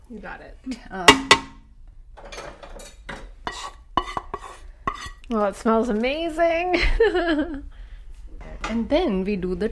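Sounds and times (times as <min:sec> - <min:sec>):
speech: 0:00.1 - 0:01.6, 0:05.3 - 0:07.7, 0:08.7 - 0:09.7
metal utensil clanking in a pan as dal is added to the tempering: 0:01.1 - 0:01.6, 0:02.2 - 0:05.2
soft rasping stir of dal in a pan: 0:02.2 - 0:06.0.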